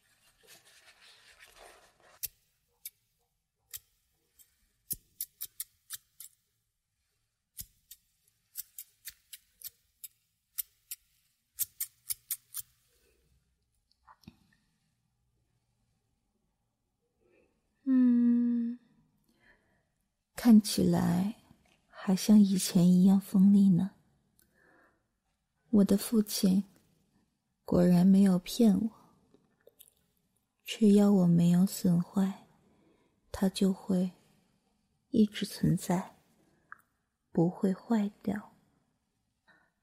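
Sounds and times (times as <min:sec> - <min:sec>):
scissors snipping: 0:03.7 - 0:06.4, 0:07.6 - 0:11.0, 0:11.6 - 0:12.7
speech: 0:20.5 - 0:21.4, 0:22.1 - 0:24.0, 0:25.7 - 0:26.7, 0:27.7 - 0:29.0, 0:30.7 - 0:32.4, 0:33.4 - 0:34.2, 0:35.1 - 0:36.1, 0:37.4 - 0:38.5.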